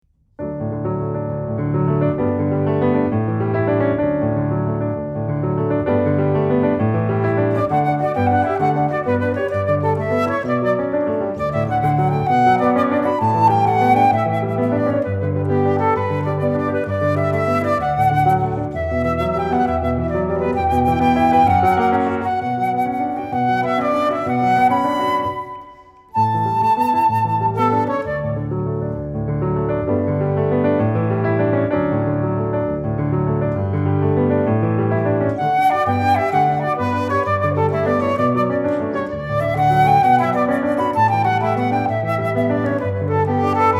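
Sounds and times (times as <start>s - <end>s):
piano playing a gigue: 0.4s - 43.7s
flute playing a gigue: 7.0s - 28.9s, 35.4s - 43.7s.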